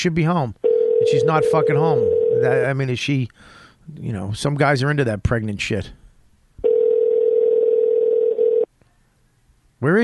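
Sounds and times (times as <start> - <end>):
speech: 0.0 - 6.0, 9.8 - 10.0
telephone ringing tone: 0.6 - 2.7, 6.6 - 8.7.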